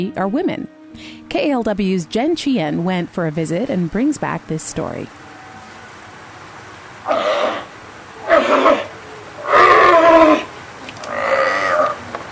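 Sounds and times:
speech: 0.0 - 5.2
seals and sea lions in pens at a marine mammal rescue center bellowing: 7.0 - 12.2.

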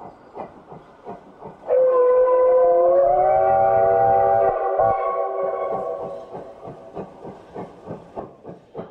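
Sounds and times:
coal-fired steam locomotive chugging along a single track: 0.0 - 8.9
steam locomotive whistle blowing: 1.7 - 6.4.

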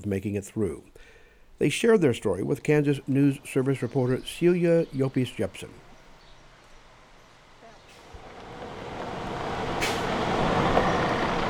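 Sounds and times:
speech: 0.0 - 5.8
2016 Freightliner Cascadia semi truck engine rumble pulling into a gravel driveway in rural southeast Kansas: 1.6 - 11.4
short sharp air hiss of a semi truck: 9.8 - 10.1.

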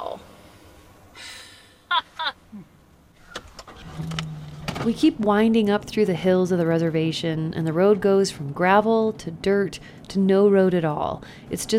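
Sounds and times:
truck rolling slowly with low steady engine rumble: 0.0 - 11.4
rattles and clunks from the truck: 3.2 - 5.4
speech: 4.8 - 11.7.

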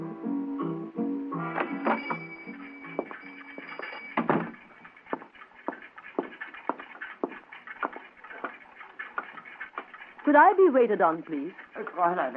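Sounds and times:
short melodic chime in a clock store: 1.4 - 4.6
several clocks ticking in a clock store in Basel Switzerland: 1.7 - 12.3
speech: 10.3 - 12.3.

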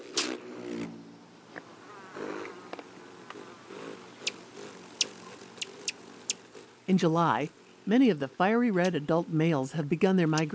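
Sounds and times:
rufous hummingbird wings buzzing in spring in the Pacific Northwest: 0.0 - 7.0
rufous hummingbird sharp high chips and clicks: 4.1 - 6.5
speech: 6.9 - 10.5.

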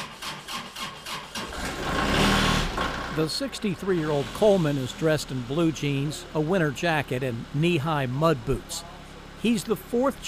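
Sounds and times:
tractor engine cranking and starting: 0.1 - 5.8
speech: 3.2 - 10.2.

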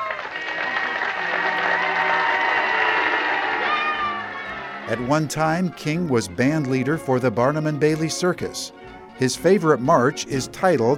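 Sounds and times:
crowd cheering: 0.0 - 6.1
speech: 4.9 - 10.9.

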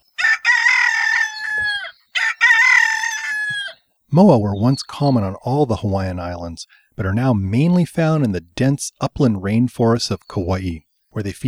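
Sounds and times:
domestic chicken rooster crowing: 0.2 - 3.8
speech: 4.1 - 11.4.

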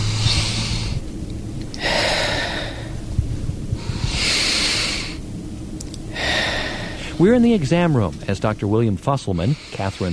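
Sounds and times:
patient taking deep breaths during a lung exam: 0.0 - 1.1, 1.8 - 5.2, 6.0 - 7.4, 9.4 - 10.1
speech: 7.2 - 10.1.

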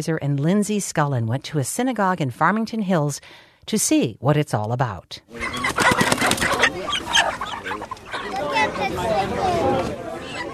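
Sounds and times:
speech: 0.0 - 6.5
live hens clucking and squawking in a crowded synagogue during kapparot: 5.3 - 10.5
murmur of people talking in a synagogue: 5.3 - 10.5.

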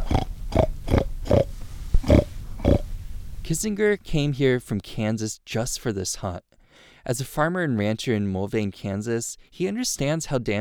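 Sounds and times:
hunter imitating a pig with nasal oinking grunts in the woods on a rainy day: 0.0 - 2.8
speech: 3.5 - 10.6.

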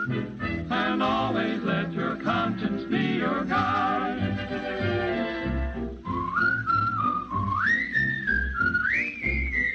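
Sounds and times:
person whistling a melody: 0.0 - 0.8, 6.0 - 9.7
bouncy instrumental accompaniment: 0.0 - 9.7
speech: 0.1 - 1.7.

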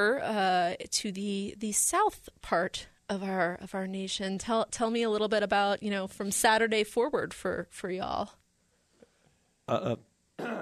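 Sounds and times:
speech: 0.0 - 8.4, 9.7 - 10.6
person clearing throat: 9.7 - 10.6.

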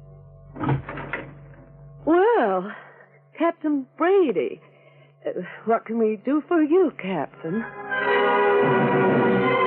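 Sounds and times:
low steady room hum: 0.0 - 7.8
door pulled open with rattling creak of wood and hardware: 0.6 - 1.6
speech: 3.4 - 7.8, 8.6 - 9.5.

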